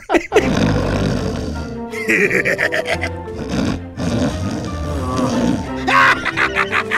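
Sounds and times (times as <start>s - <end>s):
person performing loud raspy snoring of a character sleeping on a couch: 0.3s - 5.9s
person performing a gleeful sinister cackle: 1.9s - 3.2s, 5.7s - 6.9s.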